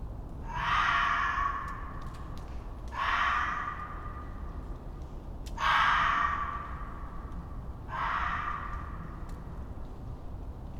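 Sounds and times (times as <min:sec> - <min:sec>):
low background rumble: 0:00.0 - 0:10.7
red fox screaming in winter forest at night: 0:00.4 - 0:02.2, 0:02.9 - 0:04.4, 0:05.6 - 0:07.3, 0:07.9 - 0:09.5.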